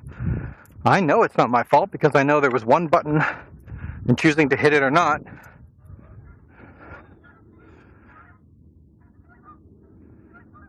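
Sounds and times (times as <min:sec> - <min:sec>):
speech: 0:00.8 - 0:05.5
flock of Canada geese honking: 0:06.9 - 0:08.4, 0:09.0 - 0:10.6.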